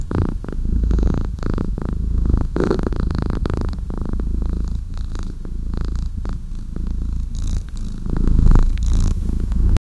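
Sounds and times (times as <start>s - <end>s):
two kittens purring: 0.0s - 9.8s
soft rustling: 7.1s - 9.8s.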